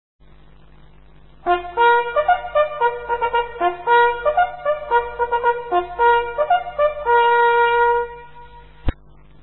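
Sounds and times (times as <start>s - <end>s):
hunting horn signal encouraging the hunt: 1.4s - 8.9s.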